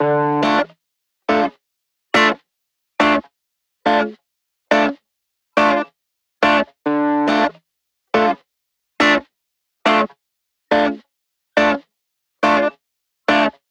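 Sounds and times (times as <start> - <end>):
dry offbeat dub guitar at 140 BPM in D minor: 0.0 - 0.7, 1.3 - 1.5, 2.2 - 2.4, 3.9 - 5.0, 6.4 - 7.6, 8.2 - 8.4, 9.0 - 9.2, 9.9 - 10.1, 10.7 - 11.0, 11.6 - 11.8, 12.4 - 13.6.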